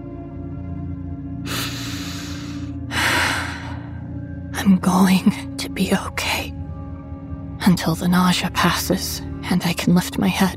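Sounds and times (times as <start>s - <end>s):
deep breathing in through the nose and out through the mouth: 1.4s - 4.2s
speech: 4.6s - 6.5s, 7.6s - 10.5s.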